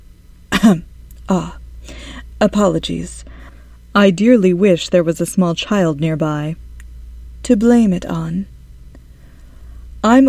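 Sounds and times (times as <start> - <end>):
polite throat-clearing cough: 0.5 - 0.8
speech: 0.7 - 1.6, 2.4 - 3.2, 4.0 - 6.6, 7.4 - 8.5, 10.0 - 10.2.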